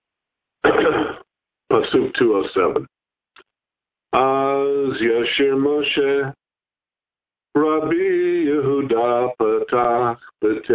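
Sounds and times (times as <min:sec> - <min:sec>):
rough throat clearing: 0:00.6 - 0:01.3
speech: 0:00.8 - 0:03.0, 0:04.1 - 0:06.4, 0:07.6 - 0:10.7.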